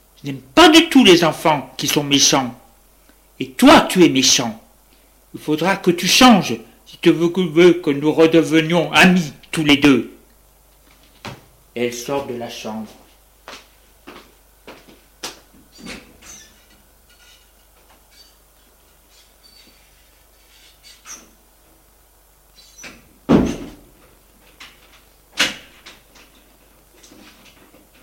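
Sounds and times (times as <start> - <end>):
speech: 0.2 - 2.6, 3.4 - 4.6, 5.3 - 10.1, 11.2 - 13.6
door shutting thud: 22.8 - 24.0.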